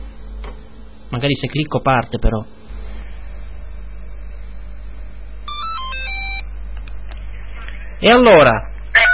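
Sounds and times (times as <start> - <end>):
low rumbling hum: 0.0 - 9.1
speech: 1.1 - 2.6, 8.0 - 8.7
telephone ringing with bright melodic electronic tones: 5.4 - 6.4.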